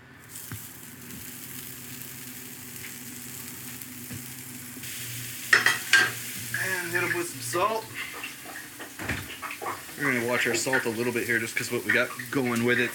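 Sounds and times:
spätzle sizzling on a grill: 0.0 - 12.9
speech: 6.9 - 8.1, 10.0 - 12.9.

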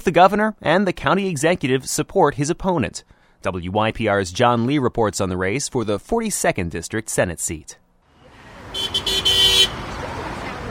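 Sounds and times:
speech: 0.0 - 7.9
passing traffic rumble during morning rush hour on York Road: 7.5 - 10.6
car horn honking in support of a state senator: 8.4 - 10.1.

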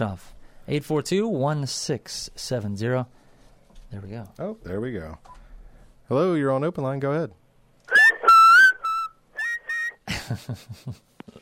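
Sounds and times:
speech: 0.0 - 3.2, 3.9 - 5.4, 6.1 - 7.4, 10.3 - 11.1
shrill whistled tones through a caller's telephone line: 7.9 - 10.0.

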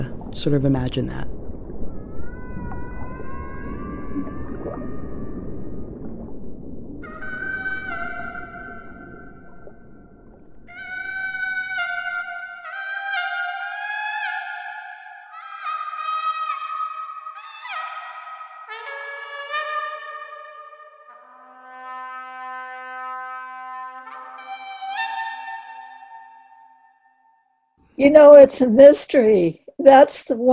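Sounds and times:
low rumbling background: 0.0 - 11.5
whale song: 0.0 - 27.8
speech: 0.4 - 1.4, 28.0 - 30.5.

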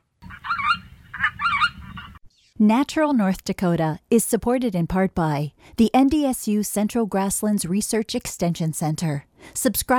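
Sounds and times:
geese honking and cackling overhead: 0.2 - 2.2
speech: 2.6 - 9.9.

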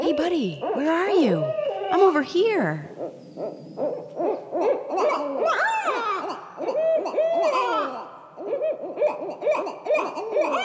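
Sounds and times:
female barred owl hooting and cackling: 0.0 - 10.6
speech: 0.1 - 5.7.

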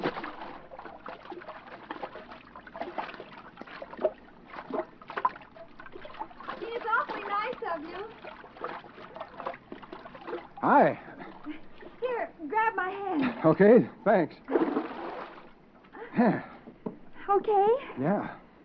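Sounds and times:
person swimming with splashing strokes: 0.0 - 12.2, 14.4 - 15.6
speech: 10.7 - 11.0, 13.4 - 14.6, 16.2 - 16.5, 17.4 - 18.4.

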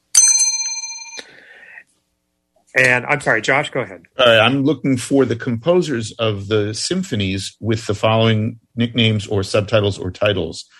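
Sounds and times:
bell ringing as a quiz signal: 0.0 - 1.4
speech: 2.7 - 10.7.

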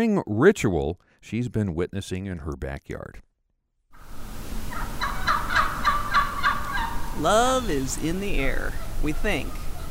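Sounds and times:
speech: 0.0 - 3.3, 7.2 - 9.6
wild turkeys gobbling: 4.7 - 9.8.

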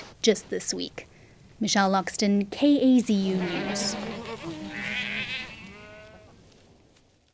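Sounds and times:
speech: 0.2 - 4.2
goat bleating at Fort Ord: 3.2 - 6.4.

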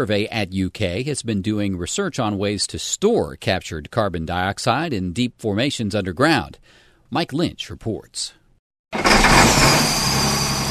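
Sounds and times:
speech: 0.0 - 10.0
natural gas well rig engine starting up in rural Johnson County: 9.0 - 10.7.

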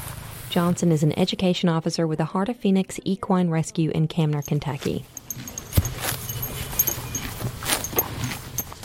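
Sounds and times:
speech: 0.5 - 5.5
elderly rescued horse chewing grass while grazing: 4.4 - 8.8.

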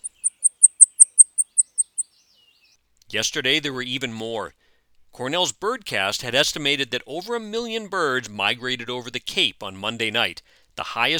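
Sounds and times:
blackpoll warbler singing very high thin sibilant notes: 0.0 - 2.8
speech: 3.1 - 4.6, 5.2 - 11.1.

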